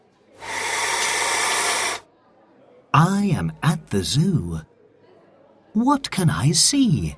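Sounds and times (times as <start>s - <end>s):
loud sustained snake hiss: 0.4s - 2.0s
speech: 3.0s - 4.7s, 5.8s - 7.1s.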